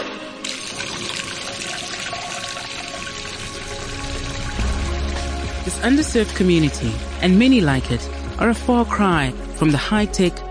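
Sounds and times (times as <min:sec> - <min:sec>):
water pouring into a container: 0:00.4 - 0:08.3
speech: 0:05.7 - 0:10.5.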